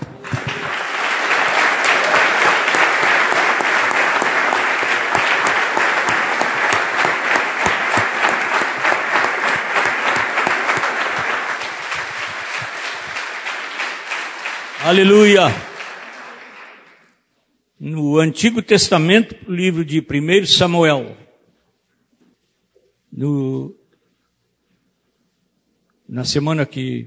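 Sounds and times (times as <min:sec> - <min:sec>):
large crowd applauding: 0:00.0 - 0:17.2
speech: 0:14.9 - 0:15.6, 0:18.2 - 0:21.2, 0:23.2 - 0:23.8, 0:26.1 - 0:27.0.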